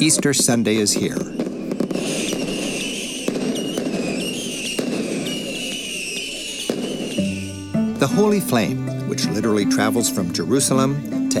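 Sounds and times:
speech: 0.0s - 2.4s, 8.0s - 11.3s
fireworks crackling: 0.0s - 8.4s
fireworks cracking and booming at midnight: 0.0s - 8.5s
crowd noise: 0.0s - 10.8s.

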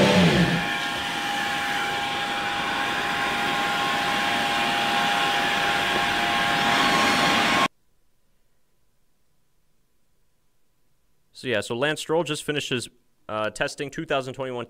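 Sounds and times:
Formula 1 car engine screaming on track: 0.0s - 7.7s
speech: 11.4s - 14.6s.

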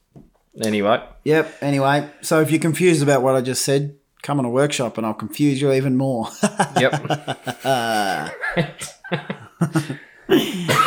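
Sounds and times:
speech: 0.6s - 10.0s
laughter: 6.2s - 10.8s
person groaning: 7.6s - 8.4s
person coughing: 7.8s - 10.8s.

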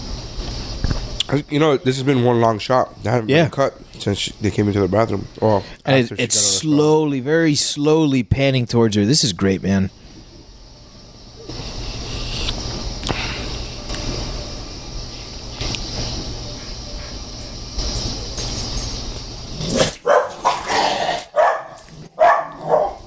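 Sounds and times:
film soundtrack playing: 0.0s - 23.0s
speech: 1.3s - 10.0s
pet dog barking in the room: 19.7s - 23.0s.

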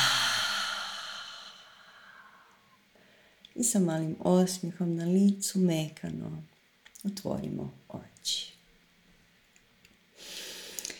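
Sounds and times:
long breathy exhale during guided meditation: 0.0s - 3.4s, 10.2s - 10.9s
speech: 3.6s - 8.6s.

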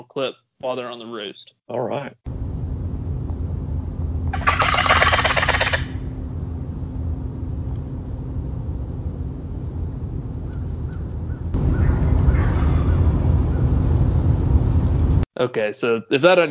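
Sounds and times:
speech: 0.0s - 2.3s, 15.4s - 16.4s
steady outdoor noise: 2.3s - 15.3s
raspy rattling turkey box call: 4.3s - 6.0s
wild turkeys gobbling: 4.3s - 6.1s, 10.5s - 13.6s
crow cawing: 4.4s - 6.0s, 11.7s - 13.1s.

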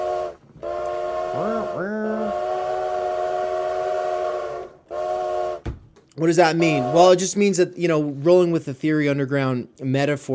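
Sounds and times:
train whistle blowing a long steady chord: 0.0s - 5.7s, 6.4s - 7.3s
speech: 1.4s - 2.2s, 6.2s - 10.3s.

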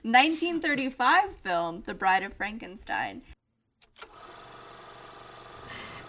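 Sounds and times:
speech: 0.0s - 3.3s
clicks: 3.8s - 4.2s.

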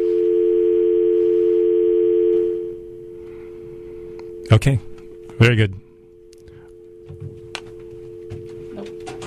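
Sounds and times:
telephone dial tone on a line being tried: 0.0s - 2.8s, 6.2s - 9.2s
speech: 4.5s - 5.8s.

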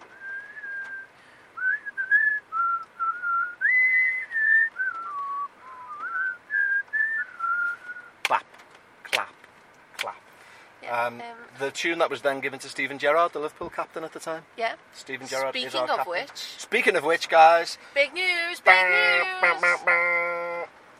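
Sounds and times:
person whistling a bouncy cartoon-style tune: 0.1s - 8.2s
speech: 11.1s - 20.3s.

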